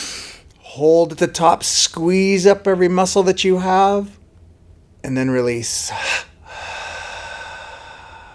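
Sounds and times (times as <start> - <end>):
sharp double inhale through the nostrils: 0.0 - 0.4, 6.0 - 8.3
speech: 0.8 - 4.2, 5.0 - 6.3.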